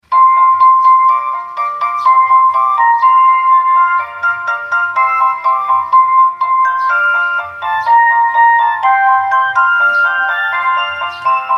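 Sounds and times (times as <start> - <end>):
ice cream ringtone: 0.0 - 11.5.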